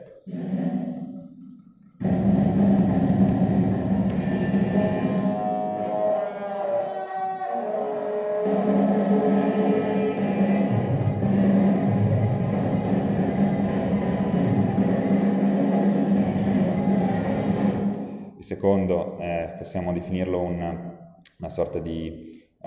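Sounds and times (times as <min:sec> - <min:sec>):
sustained tonal line: 0:00.0 - 0:17.2
roaring distorted wall of sound of black jazz: 0:00.0 - 0:22.6
speech: 0:18.5 - 0:22.6.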